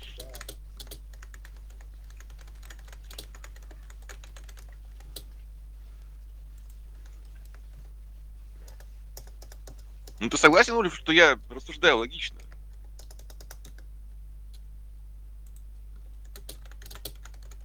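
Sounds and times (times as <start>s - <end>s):
typing on a computer keyboard: 0.0s - 5.3s, 6.6s - 8.0s, 8.7s - 10.2s, 12.4s - 13.9s, 15.4s - 17.6s
speech: 10.2s - 12.4s.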